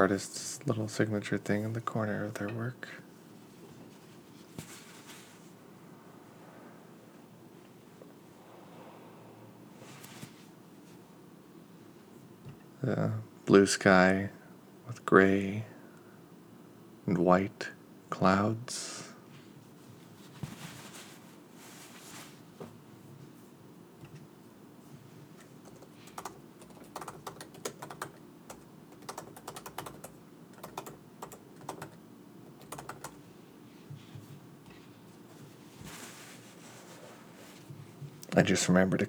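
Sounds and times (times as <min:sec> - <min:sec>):
speech: 0:00.0 - 0:03.0, 0:12.8 - 0:15.7, 0:17.1 - 0:19.1, 0:38.4 - 0:39.0
steady hiss: 0:00.0 - 0:39.0
typing on a computer keyboard: 0:25.6 - 0:33.2.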